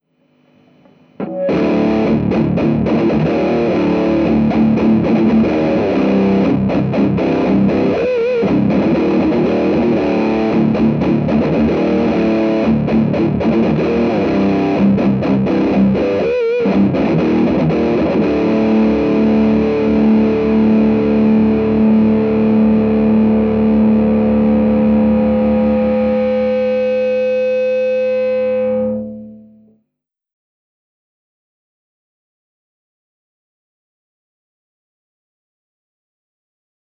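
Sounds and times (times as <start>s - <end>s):
ultra lead guitar tone through a Randall MTS amplifier: 0.6s - 29.8s.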